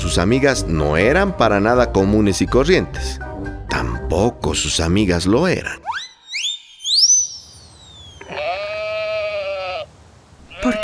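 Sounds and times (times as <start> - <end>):
speech: 0.1 - 5.9
high sweeping whistle-like chirps: 5.8 - 8.4
sheep bleating: 8.2 - 10.8.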